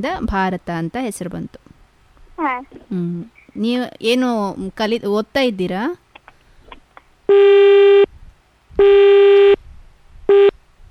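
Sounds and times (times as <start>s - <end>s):
speech: 0.0s - 1.7s, 2.4s - 6.0s, 7.3s - 7.7s, 8.8s - 9.2s
telephone busy tone after a dropped call: 8.8s - 9.6s, 10.3s - 10.5s.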